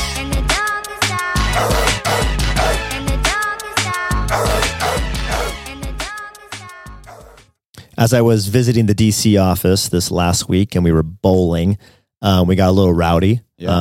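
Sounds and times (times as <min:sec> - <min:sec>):
bass-heavy music: 0:00.0 - 0:07.4
dog barking: 0:04.3 - 0:05.5
speech: 0:08.0 - 0:13.7.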